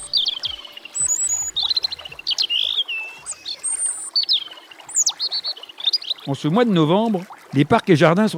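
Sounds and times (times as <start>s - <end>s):
European robin singing: 0.0s - 6.6s
speech: 6.3s - 8.3s.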